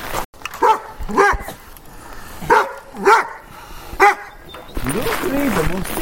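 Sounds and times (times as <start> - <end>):
large dog barking greeting visitors: 0.5 - 1.6, 2.4 - 4.4
person talking: 4.8 - 6.0.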